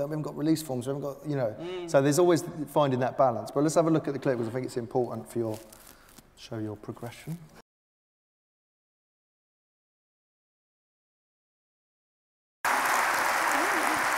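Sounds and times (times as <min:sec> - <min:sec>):
speech: 0:00.0 - 0:05.8, 0:06.4 - 0:07.6
audience applause: 0:12.6 - 0:14.1.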